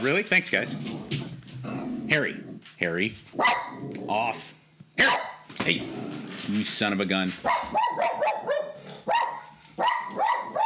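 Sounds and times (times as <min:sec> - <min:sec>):
speech: 0:00.0 - 0:08.2
dog barking indoors at a dog walking by the window: 0:03.4 - 0:03.8, 0:05.0 - 0:05.5, 0:07.4 - 0:10.6.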